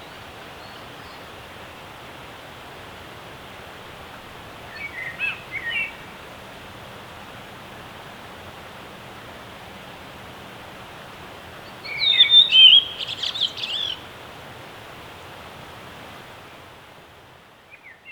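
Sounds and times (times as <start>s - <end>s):
background hiss: 0.0s - 18.1s
redwing singing: 4.7s - 6.2s, 11.6s - 14.1s.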